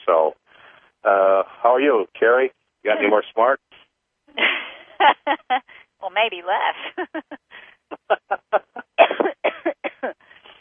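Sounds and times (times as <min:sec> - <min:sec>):
speech: 0:01.8 - 0:03.6, 0:06.2 - 0:07.4
laughter: 0:02.9 - 0:03.3, 0:04.4 - 0:05.7, 0:06.8 - 0:09.0
person coughing: 0:09.0 - 0:10.2.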